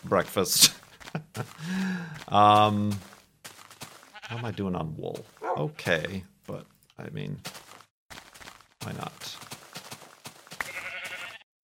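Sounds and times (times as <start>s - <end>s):
speech: 0.0s - 3.1s, 4.3s - 7.6s, 8.9s - 9.4s
single sheep bleating: 4.0s - 4.6s, 10.6s - 11.5s.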